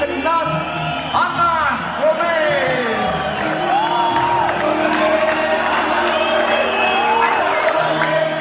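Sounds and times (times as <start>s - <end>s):
huge stadium crowd roaring and shouting: 0.0s - 8.3s
whoops and cheers: 0.4s - 8.3s
stadium crowd chanting a name: 2.9s - 8.3s.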